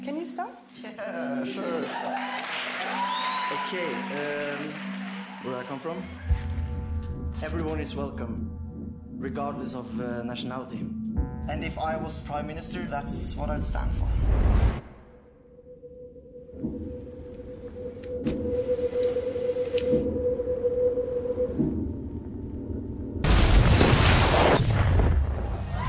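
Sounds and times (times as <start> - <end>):
speech: 0.0 - 6.6, 7.4 - 8.5, 9.2 - 14.9
steady low hum with faint pulses: 6.3 - 25.7.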